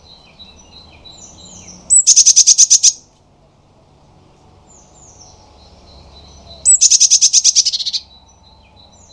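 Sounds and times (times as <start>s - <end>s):
Eurasian blue tit scolding: 1.2s - 3.0s, 6.2s - 8.1s.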